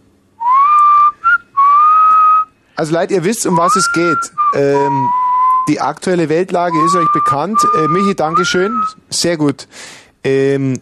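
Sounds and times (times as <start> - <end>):
person whistling a short tune: 0.4 - 2.5, 3.5 - 5.8, 6.7 - 9.0
speech: 2.8 - 10.8.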